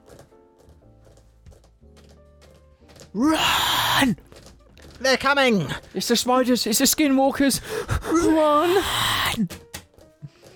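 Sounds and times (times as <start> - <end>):
horse hooves clip-clopping: 0.0 - 3.1, 4.2 - 6.1
speech: 3.1 - 4.3, 5.0 - 9.6.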